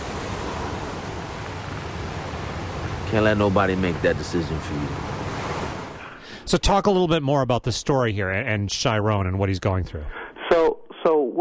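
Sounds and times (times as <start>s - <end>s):
ocean waves in the background of a film scene: 0.0s - 6.4s
speech: 3.1s - 5.1s, 6.5s - 10.2s, 11.0s - 11.3s.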